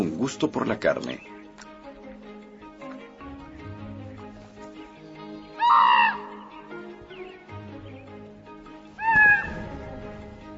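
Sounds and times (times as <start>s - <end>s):
speech: 0.2s - 1.3s
crow cawing near a carcass: 5.4s - 7.0s, 9.0s - 9.8s.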